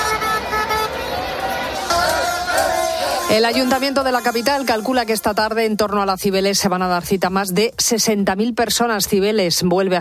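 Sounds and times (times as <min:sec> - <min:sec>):
car horns honking in capital city street traffic: 0:00.0 - 0:05.4
busy capital city street traffic din: 0:00.0 - 0:08.2
indistinct voices on a city street: 0:00.4 - 0:06.1
speech: 0:03.3 - 0:10.0.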